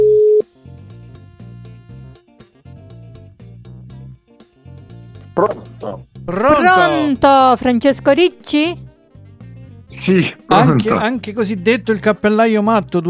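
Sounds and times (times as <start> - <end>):
phone line steady tone: 0.0 - 0.5
speech: 5.4 - 8.8, 10.0 - 13.0.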